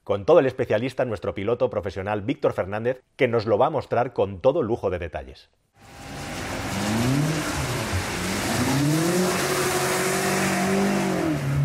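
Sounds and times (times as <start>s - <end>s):
speech: 0.1s - 6.2s
sports car engine revving while accelerating and drifting: 5.8s - 11.6s
tire noise: 5.8s - 11.6s.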